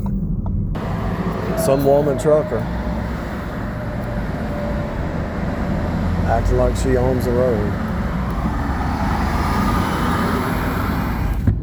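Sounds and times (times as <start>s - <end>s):
engine and tire noise of highway traffic: 0.0s - 11.6s
road rumble inside a moving vehicle on a highway: 0.0s - 11.6s
speech: 1.6s - 2.8s, 6.3s - 7.8s
thump: 11.4s - 11.6s.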